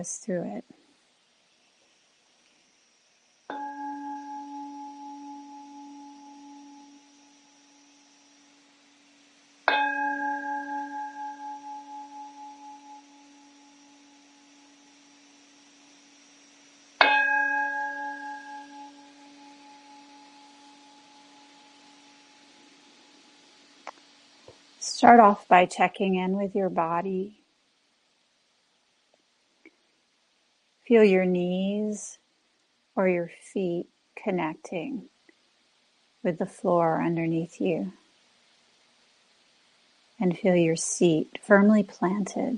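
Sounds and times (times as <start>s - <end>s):
speech: 0.0s - 0.8s, 25.0s - 27.4s, 30.9s - 32.2s, 33.0s - 35.1s, 36.2s - 38.0s, 40.2s - 42.5s
meditation bell struck to open a seated compassion meditation practice: 3.5s - 24.2s.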